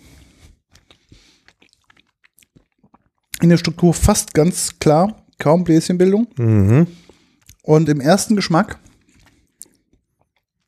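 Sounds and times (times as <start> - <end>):
wet chewing of a soft gin-and-tonic gummy candy: 0.0 - 4.4, 7.0 - 7.7, 8.4 - 10.6
biting into a gin-and-tonic gummy candy: 0.7 - 3.5, 8.8 - 10.6
speech: 3.4 - 7.0, 7.7 - 8.8.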